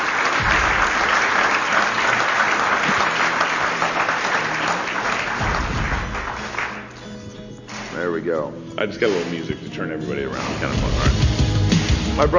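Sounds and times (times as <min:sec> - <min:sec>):
crowd applauding: 0:00.0 - 0:08.0
speech: 0:08.5 - 0:11.4, 0:12.2 - 0:12.3.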